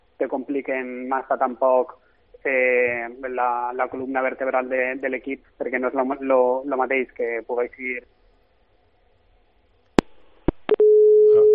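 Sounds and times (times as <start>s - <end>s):
speech: 0.2s - 8.2s
telephone busy tone after the call drops: 10.7s - 11.5s.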